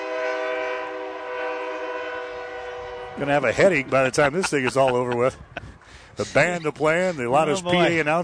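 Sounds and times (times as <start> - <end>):
freight train horn by an old stadium: 0.0 - 4.2
speech: 3.2 - 5.5, 6.2 - 8.2
laughter: 3.6 - 8.0.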